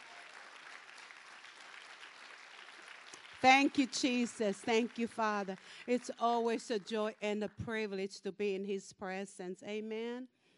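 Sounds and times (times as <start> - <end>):
congregation clapping hands: 0.0 - 7.3
speech: 3.4 - 10.4.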